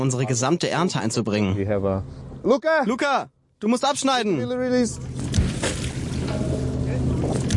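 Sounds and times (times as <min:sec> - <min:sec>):
speech: 0:00.0 - 0:05.8
wind on open water: 0:00.0 - 0:07.5
seaweed harvest boat engine droning on open water: 0:04.7 - 0:07.5
water splashing: 0:05.1 - 0:07.5.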